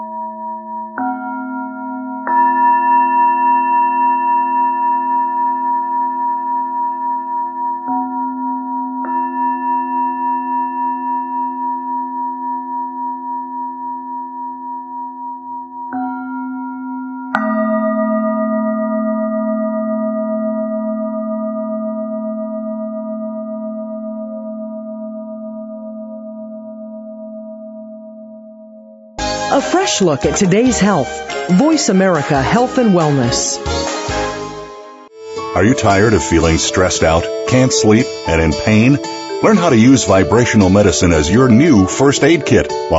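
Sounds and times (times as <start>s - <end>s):
singing bowls struck: 0.0s - 27.8s
speech: 29.7s - 33.9s, 35.6s - 42.9s.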